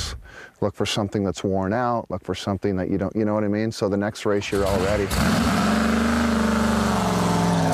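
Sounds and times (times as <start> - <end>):
speech: 0.6 - 5.5
race truck engine of nearly 700 horsepower revving: 4.5 - 7.7.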